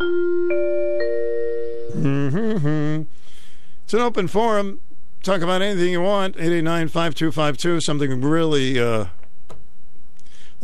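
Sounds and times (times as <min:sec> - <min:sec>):
school recess bell chiming: 0:00.0 - 0:01.9
speech: 0:01.9 - 0:03.1, 0:03.9 - 0:09.2.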